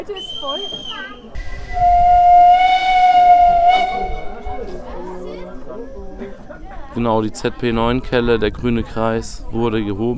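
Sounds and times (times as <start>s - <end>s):
speech: 0.0s - 2.3s, 6.6s - 10.1s
train whistle as the train sets off: 0.2s - 5.1s
train rattling along at about 10 km/h: 0.2s - 5.8s.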